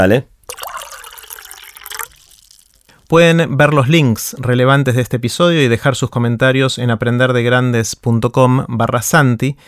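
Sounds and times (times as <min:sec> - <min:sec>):
speech: 0:00.0 - 0:00.3, 0:03.1 - 0:09.6
water pouring into a glass: 0:00.5 - 0:03.2.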